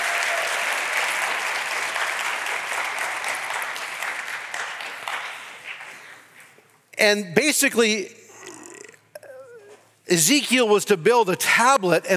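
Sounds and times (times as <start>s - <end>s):
audience clapping: 0.0s - 6.7s
speech: 7.0s - 8.2s, 10.1s - 12.1s.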